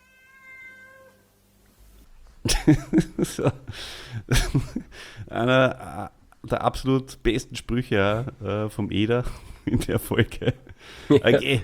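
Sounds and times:
cat meowing: 0:00.0 - 0:01.2
low noise: 0:00.0 - 0:11.6
laughter: 0:02.4 - 0:05.8, 0:09.1 - 0:11.6
speech: 0:02.6 - 0:11.6.

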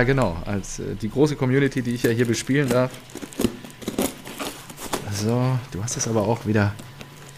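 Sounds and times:
speech: 0:00.0 - 0:03.4, 0:05.2 - 0:06.9
parcel wrapping crinkling as parcel is unwrapped: 0:01.5 - 0:07.3
packing tape ripping: 0:01.8 - 0:07.3.

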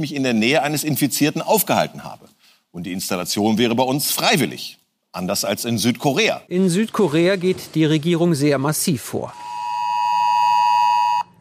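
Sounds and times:
speech: 0:00.0 - 0:09.5
mobile phone emergency warning alarm tone with a harsh buzzing edge: 0:09.3 - 0:11.3.

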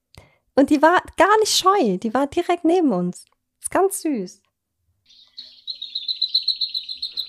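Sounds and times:
speech: 0:00.6 - 0:04.4
bird singing with high bright chirping: 0:05.0 - 0:07.2.

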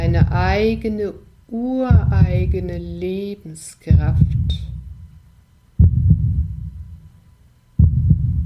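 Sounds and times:
slow deep heartbeat: 0:00.0 - 0:00.9, 0:01.9 - 0:02.9, 0:03.9 - 0:07.2, 0:07.8 - 0:08.4
speech: 0:00.2 - 0:04.8.

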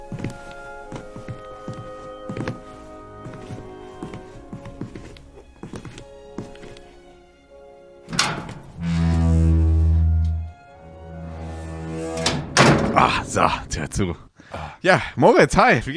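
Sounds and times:
rattling: 0:08.0 - 0:13.3
door slamming shut with a heavy thud: 0:08.1 - 0:09.3, 0:12.2 - 0:13.2
loud steady low hum: 0:08.2 - 0:12.7
speech: 0:13.4 - 0:14.2, 0:14.8 - 0:15.9.

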